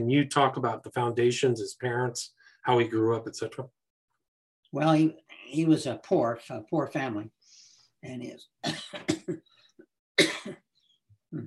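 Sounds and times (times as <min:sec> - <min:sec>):
speech: 0:00.0 - 0:03.8, 0:04.7 - 0:07.4, 0:08.0 - 0:09.6
man coughing: 0:08.6 - 0:09.4, 0:10.2 - 0:10.6.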